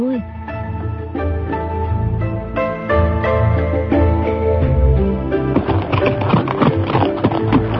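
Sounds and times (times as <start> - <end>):
sustained music bed: 0.0 - 7.7
hoofbeats of a galloping horse carrying two riders: 5.5 - 7.7.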